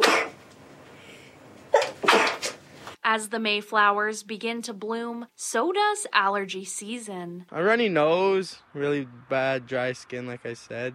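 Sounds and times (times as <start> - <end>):
person sneezing: 0.0 - 0.4, 1.7 - 2.6
speech: 3.1 - 10.9.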